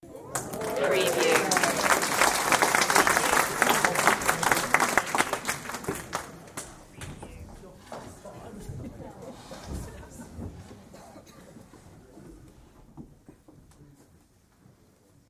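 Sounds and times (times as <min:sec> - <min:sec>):
audience short cheer: 0:00.3 - 0:05.6
audience applause: 0:00.3 - 0:06.7.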